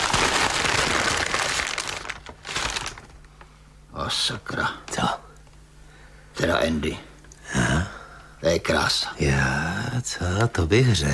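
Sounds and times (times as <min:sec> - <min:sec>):
paper crinkling as an object is unwrapped: 0:00.0 - 0:03.5
speech: 0:04.1 - 0:05.2, 0:06.4 - 0:07.1, 0:08.4 - 0:11.1.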